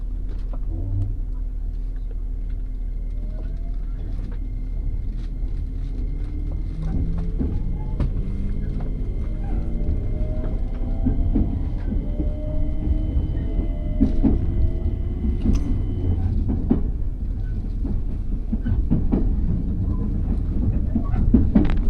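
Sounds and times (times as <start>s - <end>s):
train ride from inside with a steady low rumble: 0.0s - 21.8s
train wheels clicking and knocking: 2.4s - 21.8s
thin whining tones: 2.8s - 16.8s.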